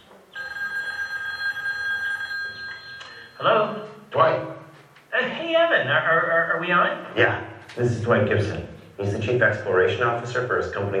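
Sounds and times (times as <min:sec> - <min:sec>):
telephone ringing with electronic tone: 0:00.3 - 0:03.9
speech: 0:03.4 - 0:04.6, 0:05.2 - 0:10.9.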